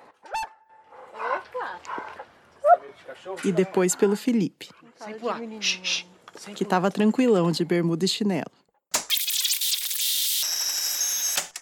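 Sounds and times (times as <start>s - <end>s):
dog barking and whining at visitors to a family home: 0.3s - 2.8s
speech: 3.2s - 8.6s.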